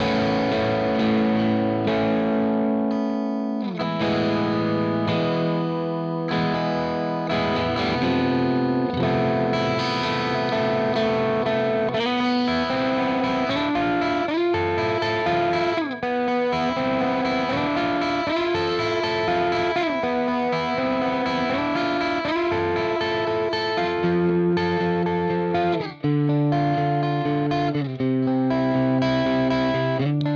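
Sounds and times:
electric guitar with crunch tone on bridge mid split pickup: 0:00.0 - 0:30.3.

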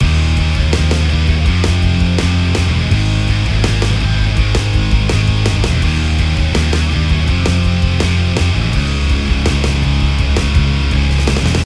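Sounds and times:
unmastered rock music: 0:00.0 - 0:11.6.

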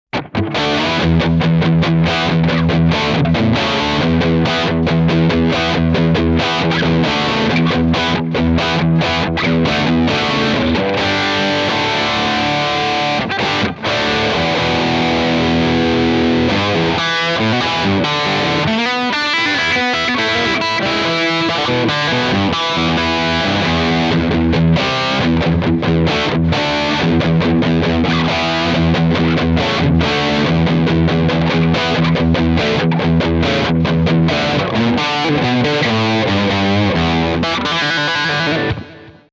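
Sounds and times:
high gain guitar amp: 0:00.1 - 0:39.3.

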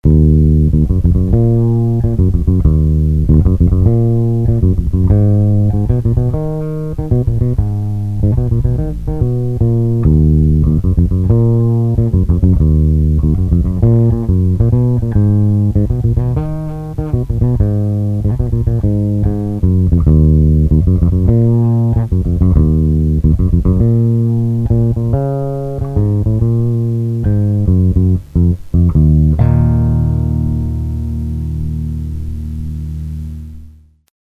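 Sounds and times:
jazz music: 0:00.0 - 0:33.8.

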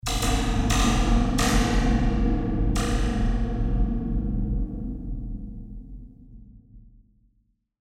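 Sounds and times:
spring drum: 0:00.0 - 0:04.2.

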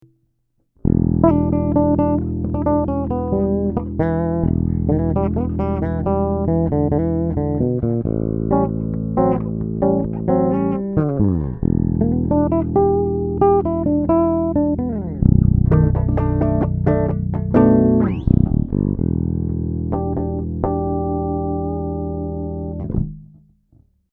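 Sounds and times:
blues guitar noodling: 0:00.8 - 0:23.2.

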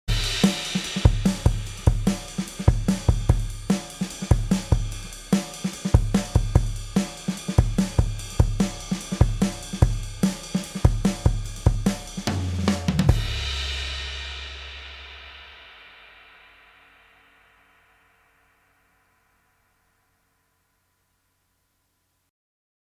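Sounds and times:
drum group through a compressor: 0:00.0 - 0:15.8.

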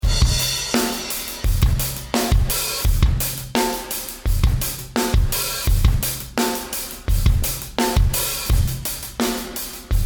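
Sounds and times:
drumbeat: 0:00.0 - 0:10.0.

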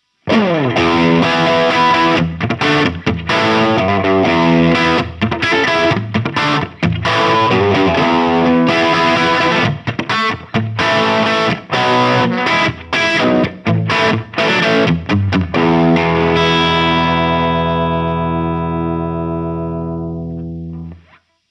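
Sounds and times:
bright humbucker electric guitar: 0:00.0 - 0:21.3.

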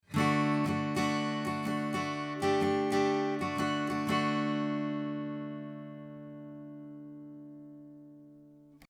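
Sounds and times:
acoustic guitar recorded 90 degrees off axis: 0:00.0 - 0:08.8.

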